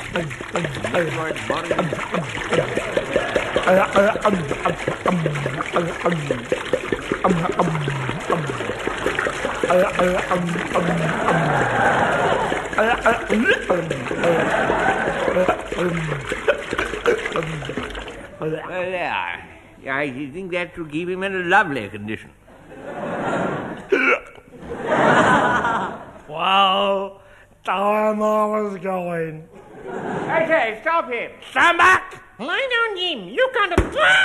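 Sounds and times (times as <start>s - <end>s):
pure alcohol pouring from a 5-gallon jar through a funnel: 0.0s - 18.6s
speech: 0.2s - 3.1s, 3.7s - 7.4s, 9.8s - 11.8s, 19.2s - 22.4s, 26.4s - 34.2s
laughter: 0.7s - 6.4s, 9.7s - 18.6s, 22.5s - 23.9s, 24.5s - 26.2s, 29.6s - 30.7s.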